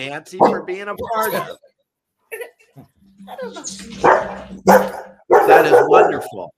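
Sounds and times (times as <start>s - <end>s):
speech: 0.0s - 1.7s, 2.3s - 6.5s
room noise: 0.0s - 6.4s
dog barking with short sharp yaps: 0.4s - 0.8s, 4.0s - 6.4s.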